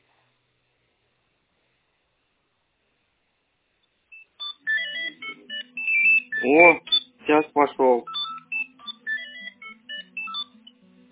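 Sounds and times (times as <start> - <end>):
telephone dialing tones from a second line: 4.2 - 7.1, 8.1 - 10.6
speech: 6.4 - 8.2.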